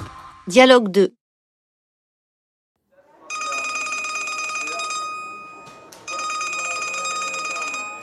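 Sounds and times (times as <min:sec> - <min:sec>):
speech: 0:00.5 - 0:01.2
telephone ringing with bright trills: 0:03.3 - 0:08.0.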